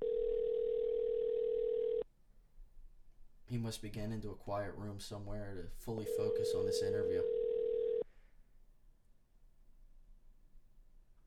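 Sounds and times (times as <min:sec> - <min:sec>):
steady droning telephone ringback tone: 0:00.0 - 0:02.0, 0:06.1 - 0:08.0
speech: 0:03.5 - 0:07.4.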